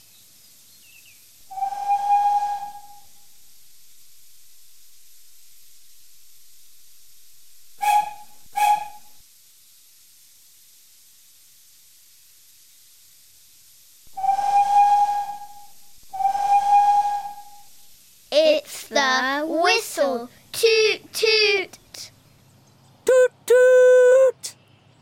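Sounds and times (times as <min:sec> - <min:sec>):
faint hiss: 0:00.0 - 0:24.9
steam train whistle blowing at a station: 0:01.5 - 0:03.3, 0:07.8 - 0:09.2, 0:14.1 - 0:17.8.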